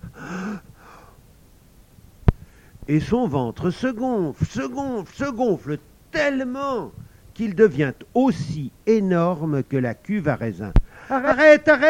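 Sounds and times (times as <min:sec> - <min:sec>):
beggar taking a sharp inhalation: 0:00.0 - 0:01.2, 0:10.8 - 0:11.2
speech: 0:02.9 - 0:11.8.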